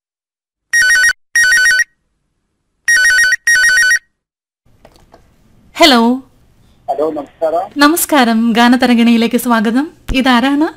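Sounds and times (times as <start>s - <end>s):
warbling electronic telephone ringtone for a radio phone-in call: 0.8s - 1.9s, 2.9s - 4.1s
speech: 5.8s - 6.2s, 7.0s - 10.7s.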